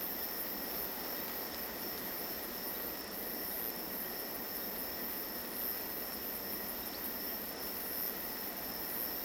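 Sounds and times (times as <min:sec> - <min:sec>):
forest ambience at night: 0:00.0 - 0:09.2.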